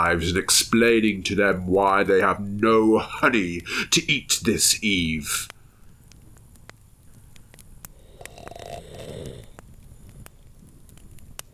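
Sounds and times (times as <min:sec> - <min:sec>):
speech: 0:00.0 - 0:05.6
fire crackling: 0:00.0 - 0:11.5
person snoring: 0:08.0 - 0:09.6.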